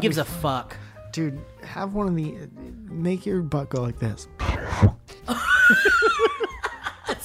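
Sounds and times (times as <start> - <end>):
speech: 0.0 - 6.4
voice imitating dog sniffing: 4.4 - 5.1
laughter: 5.3 - 7.2.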